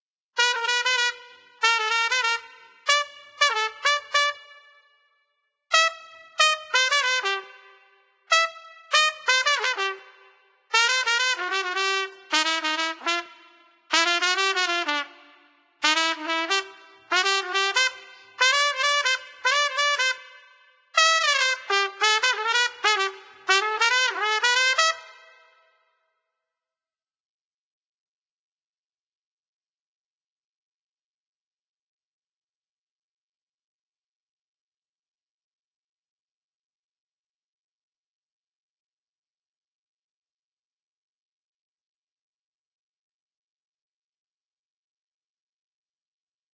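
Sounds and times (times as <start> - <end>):
trumpet duet: 0.4 - 4.8, 5.7 - 25.8.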